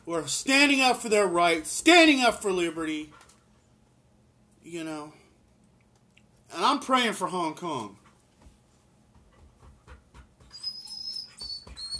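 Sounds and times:
bursts of noise: 0.0s - 11.9s
speech: 0.1s - 3.2s, 4.7s - 5.2s, 6.5s - 8.0s
soft shuffling: 7.8s - 10.3s
dog crying and whimpering: 10.4s - 11.9s.

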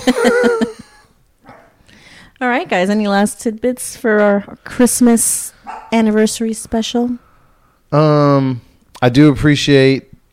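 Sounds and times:
speech: 0.0s - 0.8s, 2.4s - 7.3s, 7.9s - 10.1s
laughter: 0.0s - 1.1s
dog barking: 1.4s - 1.8s, 5.6s - 6.1s.

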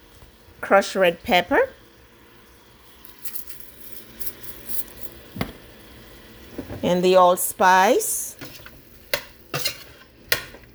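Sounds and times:
speech: 0.6s - 1.8s, 6.9s - 8.2s
utensil scraping a pan of vegetables sautéing over medium heat: 8.3s - 10.6s.

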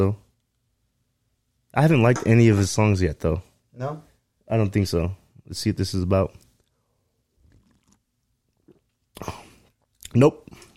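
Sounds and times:
speech: 0.0s - 0.2s, 1.7s - 6.4s, 9.2s - 9.4s, 10.1s - 10.6s
person sipping a drink that tastes like wine: 7.4s - 10.7s.

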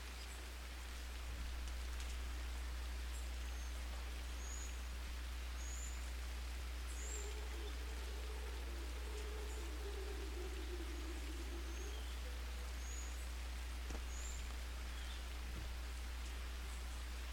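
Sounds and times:
low hum: 0.0s - 17.3s
steady soft rain falling at night: 0.0s - 17.3s
faint high chirps: 6.9s - 15.3s.

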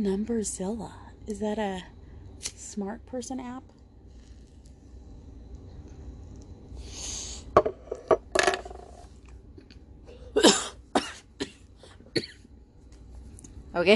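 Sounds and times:
speech: 0.0s - 3.8s, 13.8s - 13.9s
person coughing after smoking a bowl: 10.2s - 12.4s.

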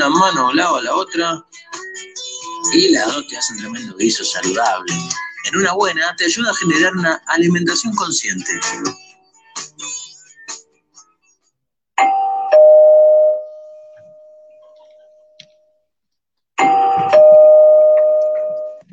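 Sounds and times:
speech: 0.0s - 9.0s
electronic doorbell chime: 12.0s - 15.4s, 16.6s - 18.8s.

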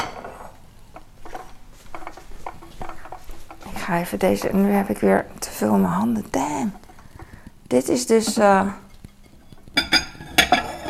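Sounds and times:
speech: 3.9s - 6.8s, 7.7s - 8.8s
ceramic plate and bowl being handled, clinking: 9.8s - 10.8s.

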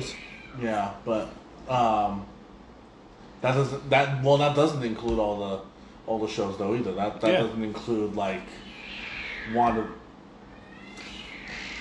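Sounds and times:
cats fighting and yowling outdoors: 0.0s - 0.8s, 8.4s - 11.7s
speech: 0.0s - 2.4s, 3.4s - 8.7s, 9.5s - 10.0s.

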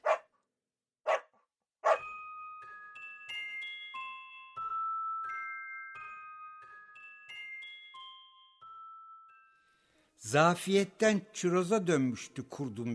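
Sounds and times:
dog barking: 0.0s - 0.3s, 1.0s - 2.0s
gentle tinkling melody of bell-like tones: 1.9s - 10.8s
speech: 10.2s - 12.9s.

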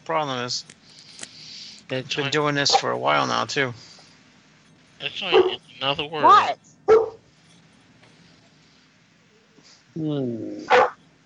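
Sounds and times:
speech: 0.1s - 0.8s, 1.9s - 3.9s, 5.0s - 6.6s, 10.0s - 10.8s
dog barking: 2.7s - 2.9s, 5.3s - 5.6s, 6.9s - 7.2s, 10.7s - 11.0s
dog whining tonal yelp: 5.3s - 5.6s, 10.7s - 11.0s.

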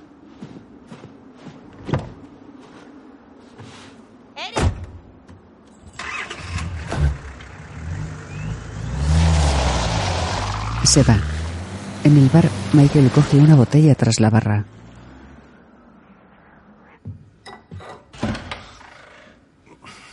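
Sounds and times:
police patrol car engine cranking to life: 5.8s - 17.0s
speech: 10.9s - 11.3s, 12.0s - 14.8s.

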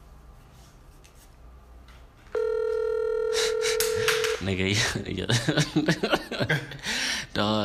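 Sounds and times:
outgoing telephone call ringback tone: 2.4s - 4.4s
speech: 4.4s - 7.0s
laughter: 5.2s - 6.9s.

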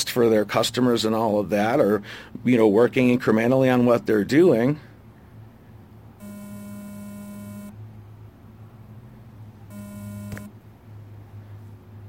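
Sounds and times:
speech: 0.2s - 4.9s
constant low mains hum: 1.2s - 12.0s
mobile phone beeping: 6.2s - 7.8s, 9.7s - 10.6s.

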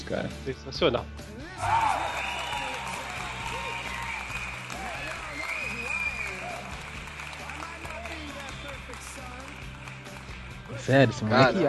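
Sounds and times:
speech: 0.1s - 2.2s, 10.8s - 11.6s
voices cheering and calling out: 1.6s - 9.6s
crowd clapping: 1.6s - 11.2s.

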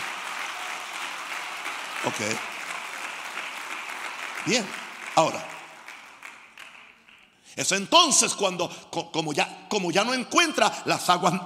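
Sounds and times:
congregation applauding: 0.0s - 7.5s
speech: 2.0s - 2.6s, 4.4s - 5.5s, 7.6s - 11.4s.

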